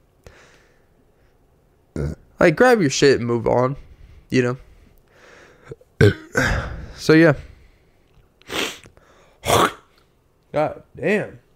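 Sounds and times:
speech: 2.0s - 4.6s, 5.7s - 7.5s, 10.6s - 11.4s
person coughing up mucus: 6.0s - 6.8s, 9.4s - 9.9s.

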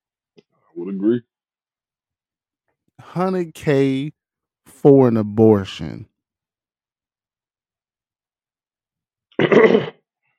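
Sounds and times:
speech: 0.8s - 1.3s, 3.1s - 4.2s, 4.8s - 6.1s, 9.4s - 10.0s
person clearing throat gruffly: 9.3s - 10.0s.

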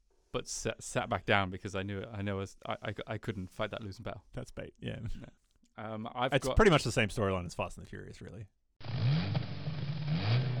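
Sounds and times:
speech: 0.4s - 8.9s
car engine revving: 8.8s - 10.5s.

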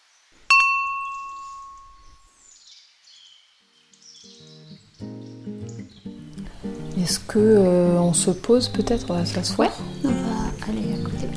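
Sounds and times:
birds chirping faintly: 0.3s - 11.3s
lower tonal sound: 0.5s - 2.3s
small doorbell struck with bright metallic ring: 0.5s - 2.4s
speech: 7.0s - 10.9s.

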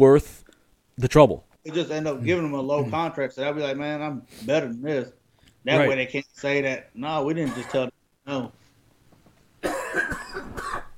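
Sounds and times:
speech: 0.0s - 0.4s, 1.0s - 8.6s
person with a lingering cough after COVID coughing raspily: 7.4s - 7.9s, 9.6s - 10.9s.

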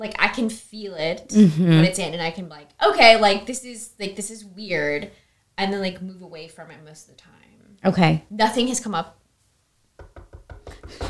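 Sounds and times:
speech: 0.0s - 9.2s
knuckles knocking on wood for luck: 10.0s - 11.0s.

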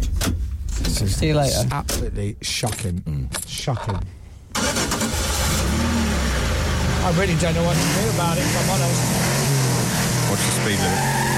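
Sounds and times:
speech: 0.9s - 4.2s, 7.0s - 9.4s, 10.3s - 11.3s
car engine starting: 4.5s - 11.3s.

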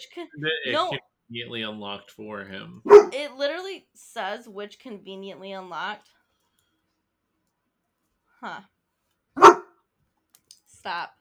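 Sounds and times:
speech: 0.0s - 6.2s, 8.4s - 8.7s, 10.8s - 11.1s
laughter: 0.4s - 3.0s
dog giving a short woof: 2.6s - 3.2s, 9.4s - 9.7s.

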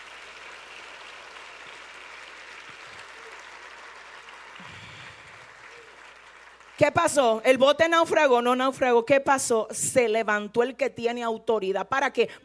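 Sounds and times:
audience applauding: 0.0s - 6.9s
speech: 6.8s - 12.4s.

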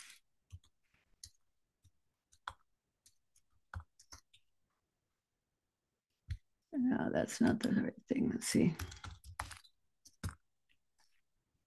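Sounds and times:
typing on a computer keyboard: 2.3s - 4.5s, 8.8s - 10.5s
speech: 6.9s - 9.0s.

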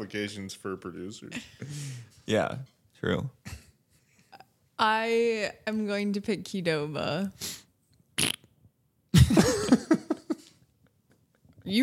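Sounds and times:
speech: 0.0s - 3.6s, 4.8s - 7.6s
sputtering fart noise blown with the mouth: 8.2s - 8.6s
laughter: 9.2s - 10.5s.

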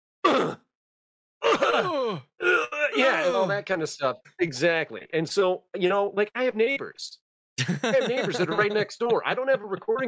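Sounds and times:
person imitating a video game character's pained gasp: 1.4s - 3.5s
speech: 3.0s - 10.0s
laughter: 7.6s - 10.0s.

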